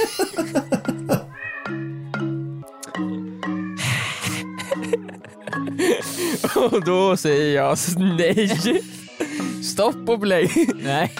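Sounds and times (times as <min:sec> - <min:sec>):
laughter: 0:00.0 - 0:01.3, 0:03.8 - 0:07.2, 0:07.8 - 0:09.6, 0:10.4 - 0:11.1
speech: 0:00.1 - 0:00.8, 0:06.6 - 0:09.0, 0:09.8 - 0:11.1
cats caterwauling while mating: 0:01.2 - 0:02.2, 0:03.0 - 0:05.4.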